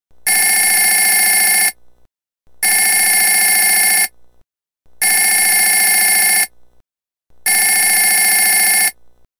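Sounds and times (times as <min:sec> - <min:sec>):
telephone single rings: 0:00.3 - 0:01.8, 0:02.6 - 0:04.1, 0:05.0 - 0:06.5, 0:07.4 - 0:09.0.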